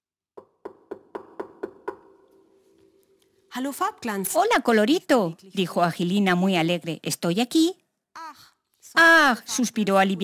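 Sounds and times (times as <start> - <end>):
knocking on a wooden door: 0.4 - 2.2
speech: 3.6 - 7.8, 8.9 - 10.2.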